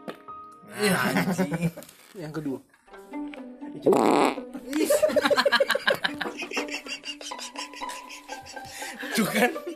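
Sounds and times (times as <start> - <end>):
people laughing: 0.8 - 1.8, 4.7 - 9.7
speech: 0.8 - 2.8, 3.8 - 7.8, 9.2 - 9.7
loud fart: 3.8 - 4.5.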